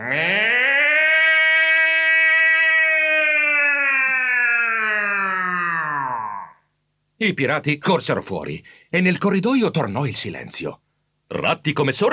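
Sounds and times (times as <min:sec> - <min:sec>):
alarm siren wailing: 0:00.0 - 0:06.2
speech: 0:07.2 - 0:12.1.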